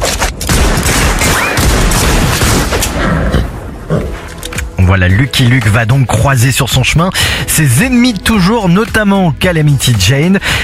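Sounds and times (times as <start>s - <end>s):
gunfire in a film trailer: 0.0s - 3.2s
speech: 5.0s - 10.6s.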